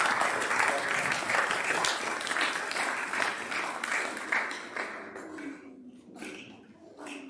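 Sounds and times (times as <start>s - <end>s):
audience clapping: 0.0s - 5.6s.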